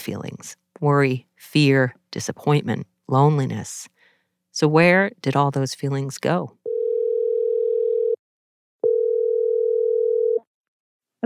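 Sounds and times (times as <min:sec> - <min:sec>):
speech: 0:00.0 - 0:04.0, 0:04.6 - 0:06.6
telephone dial tone before a call: 0:06.7 - 0:08.2, 0:08.8 - 0:10.5.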